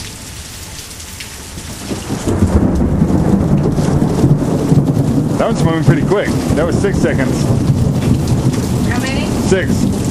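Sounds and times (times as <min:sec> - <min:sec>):
steady rain: 0:00.0 - 0:10.1
thunder from a lightning storm rumbling: 0:01.5 - 0:10.1
speech: 0:05.4 - 0:07.8, 0:09.5 - 0:10.0.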